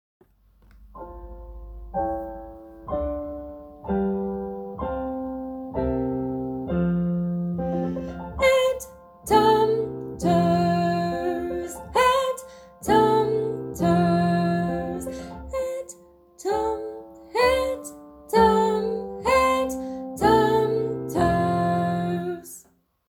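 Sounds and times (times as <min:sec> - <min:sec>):
piano: 0:00.2 - 0:23.0
person singing a children's song: 0:07.7 - 0:22.6.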